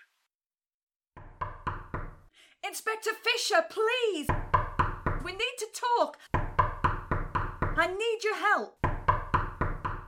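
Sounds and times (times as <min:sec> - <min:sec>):
firm knocks on a wooden apartment door: 0:01.2 - 0:02.3, 0:04.3 - 0:05.3, 0:06.4 - 0:07.9, 0:08.8 - 0:10.0
speech: 0:02.6 - 0:04.4, 0:05.2 - 0:06.4, 0:07.8 - 0:08.8.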